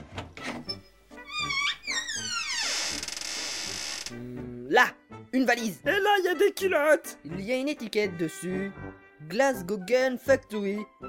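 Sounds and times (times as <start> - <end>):
wardrobe door creaking open with hinge squealing: 0.0 - 4.2
speech: 4.7 - 11.0.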